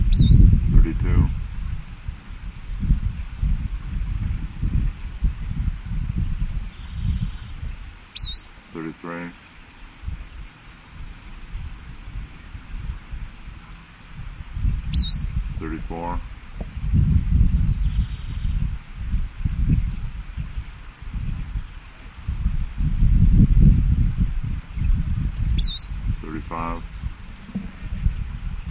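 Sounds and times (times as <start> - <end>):
male bird singing: 0.0 - 0.6, 5.9 - 8.6, 14.9 - 15.4, 17.1 - 18.6, 25.6 - 26.1
low wind rumble outdoors: 0.0 - 8.8, 9.5 - 28.7
buzzy bird call: 8.1 - 8.7, 14.9 - 15.4, 25.6 - 26.8
speech: 15.9 - 16.3.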